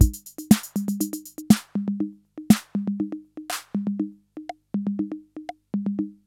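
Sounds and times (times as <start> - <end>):
CR-8000 drum machine loop: 0.0 - 6.2.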